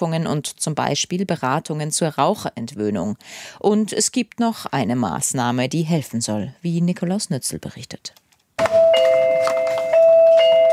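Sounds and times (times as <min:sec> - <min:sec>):
speech: 0:00.0 - 0:08.2
electronic pharmacy shop door chime: 0:08.6 - 0:10.7.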